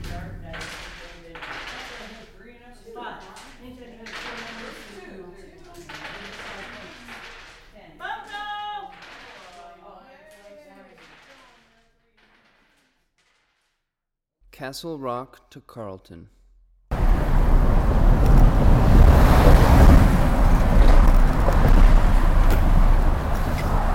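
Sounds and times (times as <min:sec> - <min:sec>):
several women chatting and laughing: 0:00.0 - 0:11.5
dice rattling and clattering across a tabletop: 0:00.5 - 0:02.4, 0:03.2 - 0:13.8
speech: 0:14.6 - 0:16.4
gusty wind noise: 0:16.9 - 0:23.9
heavy traffic including logging trucks crossing a bridge into Oregon: 0:16.9 - 0:23.9.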